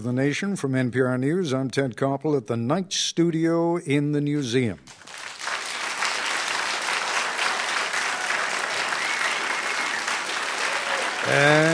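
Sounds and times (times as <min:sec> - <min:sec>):
speech: 0:00.0 - 0:05.2, 0:11.3 - 0:11.7
studio audience applauding on cue: 0:04.9 - 0:11.7.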